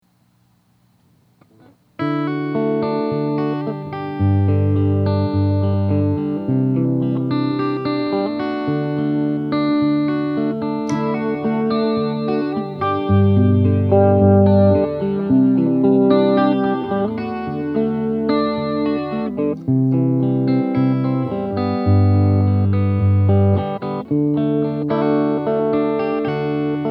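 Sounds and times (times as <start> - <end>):
guitar with chorus pedal effect: 1.4 - 26.8.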